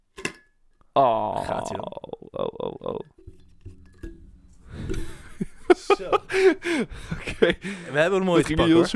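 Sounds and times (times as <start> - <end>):
speech: 1.0 - 3.1, 5.9 - 8.9
glass jar clinking as it is handled: 3.1 - 5.3
laughter: 5.0 - 8.9.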